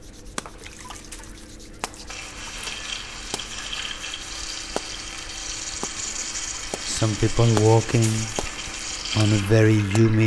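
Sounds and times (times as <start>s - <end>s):
drips and taps: 0.3s - 10.2s
falling water rushing in strong wind: 2.1s - 10.2s
speech: 7.0s - 8.4s, 9.2s - 10.2s.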